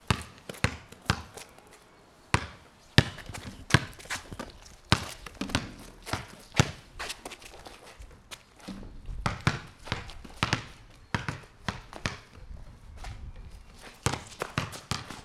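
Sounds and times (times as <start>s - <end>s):
basketball bouncing: 0.0s - 1.3s, 2.3s - 6.8s, 8.6s - 12.4s, 14.0s - 15.2s.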